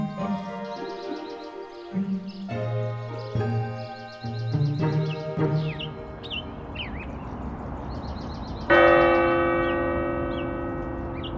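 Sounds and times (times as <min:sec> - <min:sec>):
church bell ringing: 0:00.0 - 0:07.1, 0:08.7 - 0:11.3.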